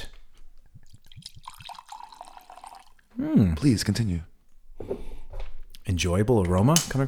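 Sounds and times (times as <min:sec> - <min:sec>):
drink being poured into a glass: 0:00.7 - 0:03.1
speech: 0:03.2 - 0:04.3, 0:06.0 - 0:07.0.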